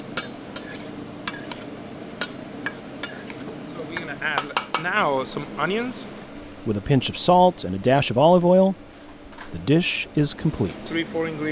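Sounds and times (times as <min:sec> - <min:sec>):
utensils clinking and scraping against a bowl tossing wahoo fish cubes with lime juice: 0:00.0 - 0:01.6, 0:02.2 - 0:05.0
speech: 0:04.2 - 0:08.9, 0:09.5 - 0:11.5.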